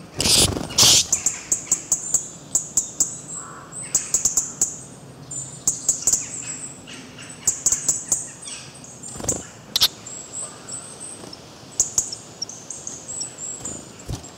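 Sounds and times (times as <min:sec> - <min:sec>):
bird chirping: 0:00.1 - 0:04.3, 0:05.3 - 0:14.3
loud bursts: 0:00.2 - 0:01.2.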